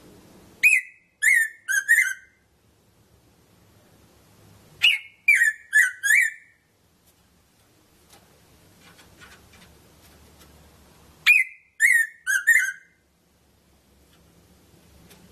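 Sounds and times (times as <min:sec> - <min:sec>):
Erythrura psittacea red-throated parrotfinch call notes: 0:00.6 - 0:02.4, 0:04.8 - 0:06.6, 0:11.2 - 0:13.0.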